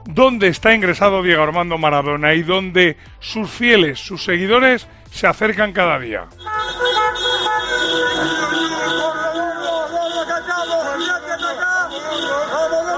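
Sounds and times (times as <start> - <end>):
speech: 0.0 - 6.8
traffic rumbling: 6.2 - 12.9
car horns honking from lines of cars outside a hospital in Buenos Aires: 6.3 - 12.9
fans shouting: 6.6 - 12.9.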